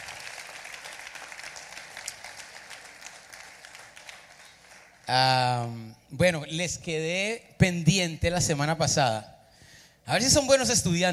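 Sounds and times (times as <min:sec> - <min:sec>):
audience applauding young people: 0:00.0 - 0:05.3
speech: 0:05.1 - 0:09.3, 0:10.1 - 0:11.1.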